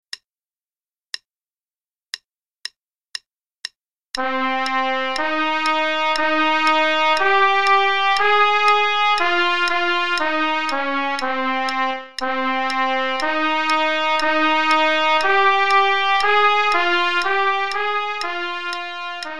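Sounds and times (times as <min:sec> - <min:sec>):
metronome click at 120 beats per minute: 0:03.1 - 0:19.3
trumpet playing in A flat: 0:04.2 - 0:19.3.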